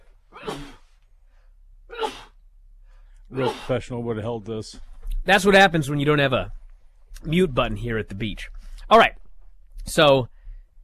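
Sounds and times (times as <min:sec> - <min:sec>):
person sneezing: 0:00.4 - 0:00.8, 0:01.9 - 0:02.4, 0:03.3 - 0:03.8
speech: 0:03.4 - 0:06.6, 0:07.2 - 0:09.2, 0:09.9 - 0:10.3.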